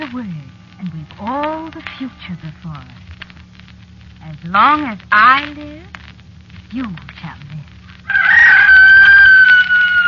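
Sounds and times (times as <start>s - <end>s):
speech: 0.1s - 3.1s, 4.2s - 6.0s, 6.7s - 7.7s
rooster crowing: 8.0s - 10.0s.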